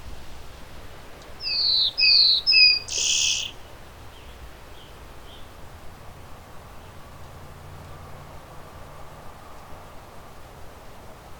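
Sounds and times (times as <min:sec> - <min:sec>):
steady hiss: 0:00.0 - 0:11.3
insect-catching bird singing high clear whistled notes: 0:01.4 - 0:03.6.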